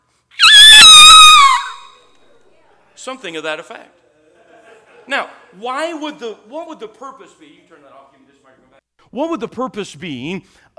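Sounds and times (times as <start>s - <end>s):
loud piercing bird screech: 0.4s - 2.0s
speech: 3.0s - 4.0s, 5.1s - 10.7s
laughter: 3.9s - 6.1s.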